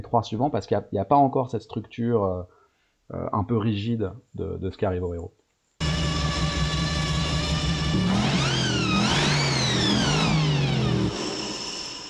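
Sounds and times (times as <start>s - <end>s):
speech: 0.0s - 5.4s
V8 car engine idling and revving: 5.8s - 12.0s.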